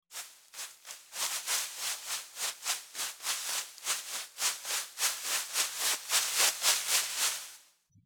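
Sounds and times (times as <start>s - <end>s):
footsteps on leaves: 0.1s - 7.7s.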